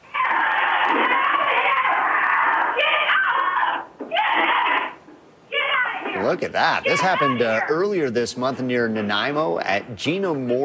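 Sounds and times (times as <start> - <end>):
Nigerian dwarf goat screaming during cougar attack on a farm: 0.1 - 7.9
speech: 6.3 - 10.6.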